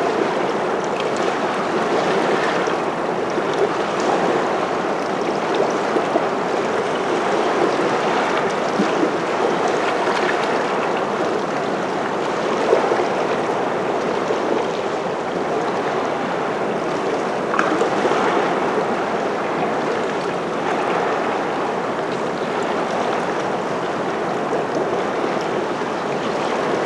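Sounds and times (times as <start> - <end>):
lagoon water lapping shore: 0.0 - 26.8.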